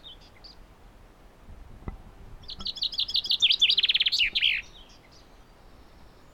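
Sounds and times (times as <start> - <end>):
Common chaffinch song, Fringilla coelebs: 0.0 - 0.7, 2.4 - 6.3.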